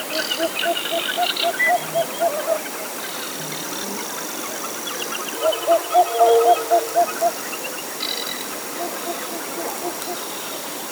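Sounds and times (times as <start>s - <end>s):
short-eared owl Asio flammeus calling: 0.1s - 2.7s, 5.2s - 7.6s, 8.6s - 10.3s.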